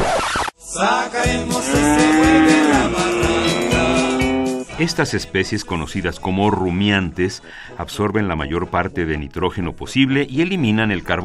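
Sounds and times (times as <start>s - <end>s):
speech: 0.8s - 2.4s, 4.8s - 11.2s
rhythmic low thumping: 1.3s - 4.8s
cow mooing: 1.6s - 4.7s.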